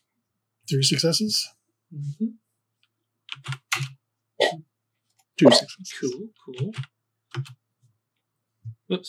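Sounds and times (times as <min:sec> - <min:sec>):
speech: 0:00.7 - 0:02.4, 0:05.4 - 0:07.6
typing on a computer keyboard: 0:03.3 - 0:03.9, 0:06.6 - 0:07.6.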